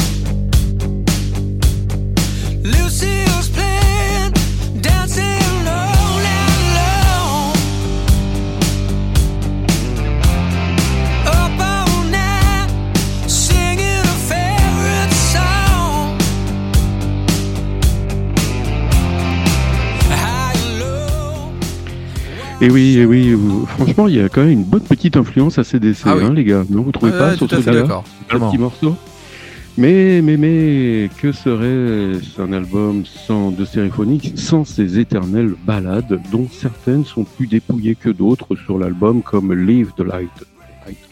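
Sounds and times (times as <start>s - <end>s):
distorted guitars: 0.0s - 41.0s
hard rock music: 0.0s - 41.0s
man singing: 2.4s - 7.9s, 11.1s - 16.3s, 20.0s - 25.1s, 26.0s - 41.0s
speech: 22.6s - 29.1s, 29.8s - 41.0s.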